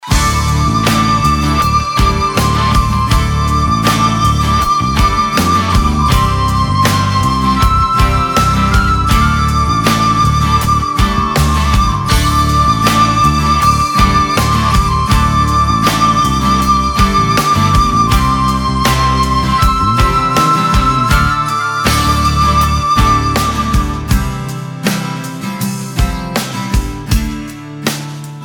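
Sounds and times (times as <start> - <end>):
ethnic rock ballad: 0.0 - 28.4.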